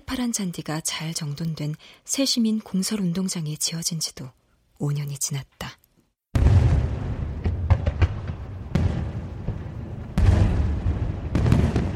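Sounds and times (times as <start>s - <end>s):
speech: 0.1s - 5.8s
fireworks booming at a fireworks display in downtown Miryang: 6.3s - 11.9s.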